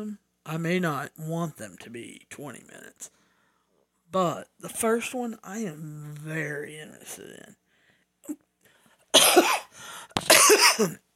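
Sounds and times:
speech: 0:00.0 - 0:03.2, 0:04.1 - 0:07.6, 0:09.2 - 0:11.1
person coughing: 0:09.1 - 0:11.0.

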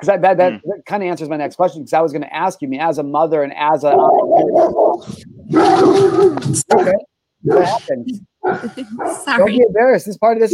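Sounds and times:
speech: 0:00.0 - 0:10.5
dogs barking loudly: 0:03.9 - 0:09.5.

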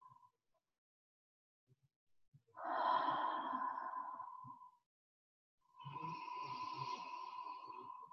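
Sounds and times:
deep breaths through oiled palms cupped over mouth and nose: 0:02.6 - 0:04.9, 0:05.7 - 0:08.1.

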